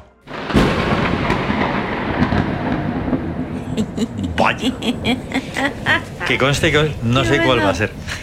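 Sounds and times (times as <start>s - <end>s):
thunderclap with sustained rumble: 0.2s - 8.2s
laughter: 3.6s - 8.2s
speech: 3.8s - 8.2s.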